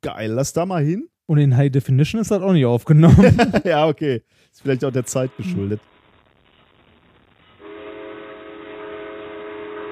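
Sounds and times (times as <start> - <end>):
speech: 0.0 - 5.9
laughter: 3.0 - 3.8
locomotive horn blaring a multi-toned chord: 7.6 - 9.9.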